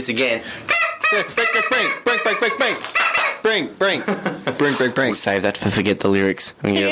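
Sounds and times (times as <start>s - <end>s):
speech: 0.0s - 6.9s
person in a studio imitating chicken squawks: 0.7s - 3.6s
laughter: 3.9s - 5.1s.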